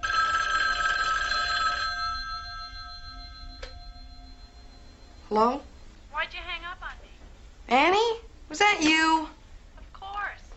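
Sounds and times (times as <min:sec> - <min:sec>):
old-fashioned telephone bell ringing in a metallic trill: 0:00.0 - 0:06.0
speech: 0:05.3 - 0:06.6, 0:07.7 - 0:09.3.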